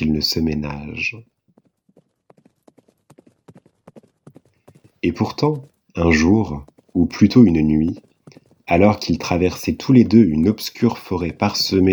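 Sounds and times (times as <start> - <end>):
speech: 0.0 - 1.4, 5.0 - 8.1, 8.7 - 11.9
horse hooves clip-clopping: 1.3 - 11.9.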